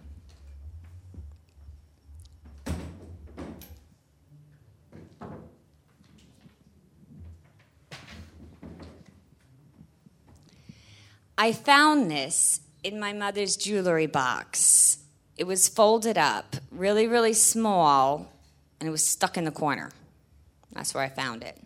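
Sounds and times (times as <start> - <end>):
low rumble: 0.0 - 4.5
wooden chair being carried and set down: 4.9 - 5.6, 7.1 - 9.9
speech: 11.4 - 20.0, 20.7 - 21.6.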